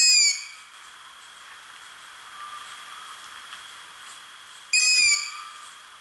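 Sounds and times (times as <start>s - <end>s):
long-eared owl fledglings giving squeaky begging calls from a played recording: 0.0s - 0.7s, 4.7s - 5.7s
faint hiss of a played recording: 0.0s - 5.9s.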